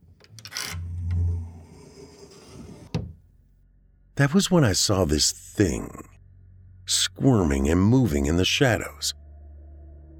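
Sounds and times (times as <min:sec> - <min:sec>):
sliding closet door opening with grinding rumble and scraping: 0:00.0 - 0:03.2
speech: 0:04.2 - 0:06.1, 0:06.9 - 0:09.2.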